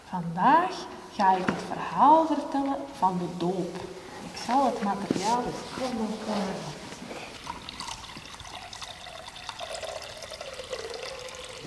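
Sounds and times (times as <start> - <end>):
speech: 0.1 - 6.8
water pouring into a vessel: 6.8 - 11.6.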